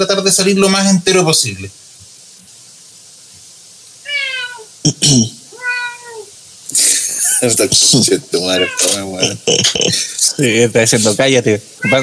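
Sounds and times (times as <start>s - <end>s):
speech: 0.0s - 1.8s, 4.9s - 5.4s, 7.4s - 12.0s
cat meowing: 4.0s - 4.8s, 5.5s - 6.4s, 8.4s - 9.2s, 11.8s - 12.0s.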